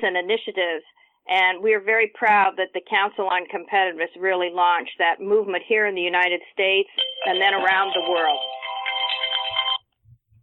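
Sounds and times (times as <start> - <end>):
speech: 0.0 - 8.6
phone ringtone bright warbling electronic melody: 7.0 - 9.8.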